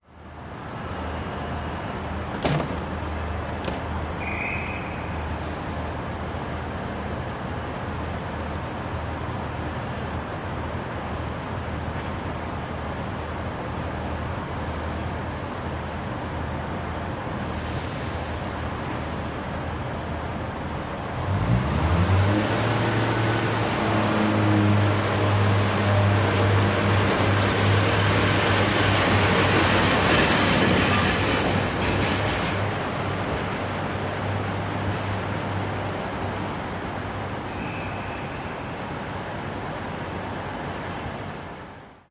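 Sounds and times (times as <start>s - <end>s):
train engine departing indoors in a train station: 0.4s - 41.7s.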